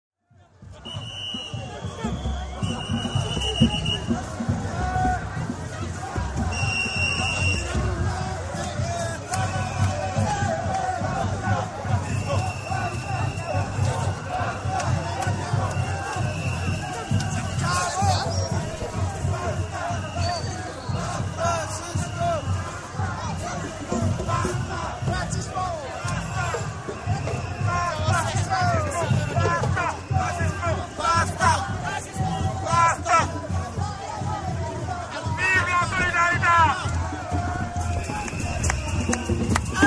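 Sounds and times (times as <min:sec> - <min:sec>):
drums at an anti-racist demonstration: 0:00.2 - 0:39.8
whistles at an anti-racist demonstration: 0:00.8 - 0:04.1, 0:06.5 - 0:07.8, 0:09.3 - 0:10.2, 0:12.0 - 0:22.7, 0:24.0 - 0:31.1, 0:37.8 - 0:39.8
people shouting at an anti-racist demonstration: 0:00.8 - 0:39.8.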